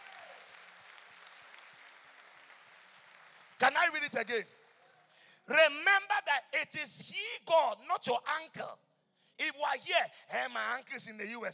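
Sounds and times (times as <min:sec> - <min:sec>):
audience clapping: 0:00.0 - 0:05.3
speech: 0:03.6 - 0:04.6, 0:05.5 - 0:11.5.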